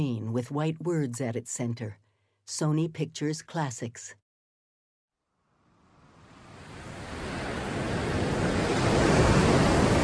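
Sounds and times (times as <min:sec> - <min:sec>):
speech: 0:00.0 - 0:04.2
churning ocean waves: 0:06.2 - 0:10.0
wind rushing: 0:06.3 - 0:10.0.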